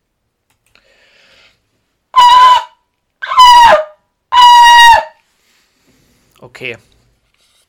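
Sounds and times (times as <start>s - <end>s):
shofar blasts: 2.2s - 5.2s
speech: 6.4s - 6.9s.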